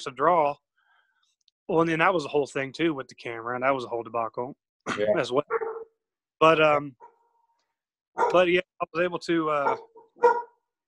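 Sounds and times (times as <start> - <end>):
speech: 0.0 - 0.6, 1.7 - 5.6, 6.4 - 7.1, 8.2 - 10.5
dogs barking excitedly: 5.4 - 6.0, 8.2 - 8.5, 9.6 - 10.6
dog sharp harmonic bark: 5.5 - 5.9, 8.2 - 8.4, 9.6 - 10.6.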